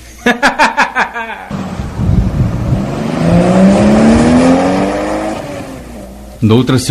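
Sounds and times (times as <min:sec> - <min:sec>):
laughter: 0:00.1 - 0:01.5
luxury car engine revving and accelerating hard: 0:01.5 - 0:06.6.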